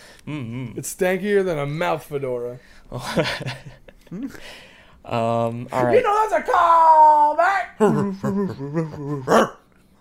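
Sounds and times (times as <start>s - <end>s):
speech: 0.2s - 9.6s
person growling and barking in imitation of an old rabid dog: 7.8s - 9.6s.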